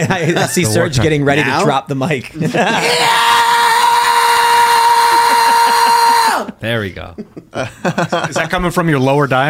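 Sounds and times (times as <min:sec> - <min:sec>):
speech: 0:00.0 - 0:03.4, 0:06.6 - 0:09.4
laughter: 0:00.0 - 0:03.5, 0:04.9 - 0:08.7
gritty distorted fry scream using false vocal cords: 0:02.8 - 0:06.6.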